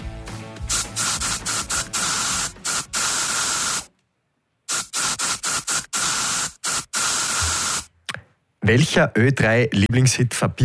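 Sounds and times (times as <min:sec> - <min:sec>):
aerosol deodorant can hissing: 0:00.6 - 0:03.9, 0:04.7 - 0:07.9
speech: 0:08.7 - 0:10.6.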